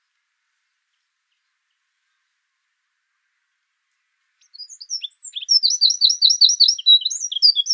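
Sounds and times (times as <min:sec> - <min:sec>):
Eurasian wren Troglodytes troglodytes troglodytes singing: 0:04.4 - 0:07.7.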